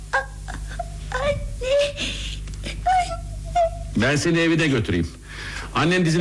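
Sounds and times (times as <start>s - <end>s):
child whimpering and sobbing after a fall that scraped a knee: 0.0s - 3.9s
low steady hum: 0.0s - 6.1s
speech: 4.0s - 6.1s.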